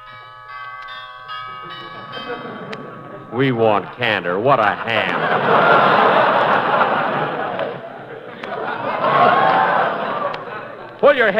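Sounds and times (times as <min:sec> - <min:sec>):
doorbell ringing: 0:00.0 - 0:07.1
laughter: 0:01.4 - 0:11.3
speech: 0:01.6 - 0:06.4, 0:11.1 - 0:11.3.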